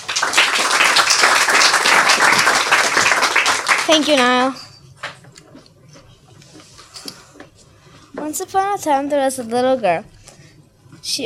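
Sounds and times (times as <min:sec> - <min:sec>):
audience applause at a storytelling reading: 0:00.0 - 0:04.4
speech: 0:03.9 - 0:04.6, 0:08.3 - 0:10.2, 0:11.1 - 0:11.2.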